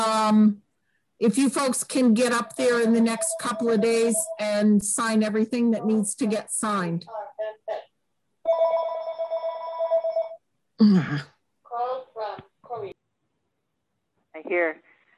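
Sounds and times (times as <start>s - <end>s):
speech: 0.3s - 0.6s, 1.2s - 7.9s, 10.8s - 11.3s, 14.4s - 14.8s
telephone ringing: 2.4s - 6.2s, 8.5s - 10.4s.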